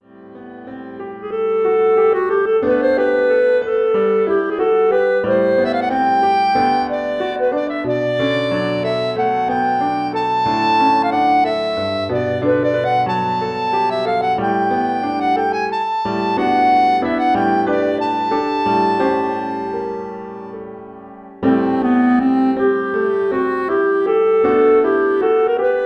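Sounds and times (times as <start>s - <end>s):
solo B-flat clarinet through a PA: 0.1s - 25.8s.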